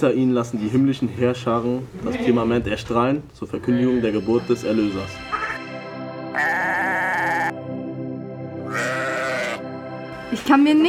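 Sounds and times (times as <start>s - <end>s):
speech: 0.0s - 5.4s, 10.3s - 10.8s
sheep bleating: 6.3s - 7.6s, 8.6s - 9.6s.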